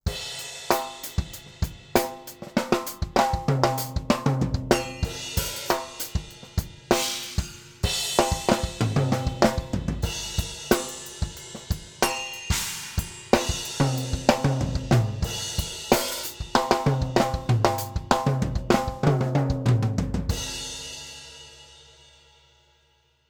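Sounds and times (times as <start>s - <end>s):
drum kit groove with fill-ins: 0.0s - 22.6s.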